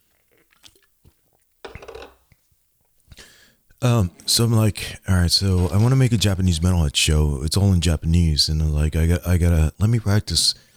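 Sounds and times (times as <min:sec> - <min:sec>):
person sipping beer: 0:00.0 - 0:05.0
speech: 0:03.8 - 0:10.7.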